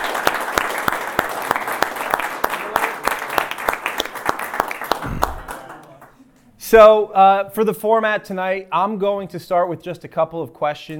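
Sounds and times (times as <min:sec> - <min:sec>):
audience applauding: 0:00.0 - 0:06.2
speech: 0:06.7 - 0:10.9.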